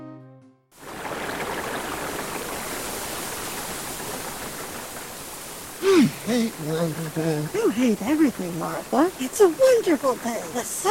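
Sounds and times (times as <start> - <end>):
calm flowing river water: 0.8 - 10.8
speech: 5.9 - 10.8.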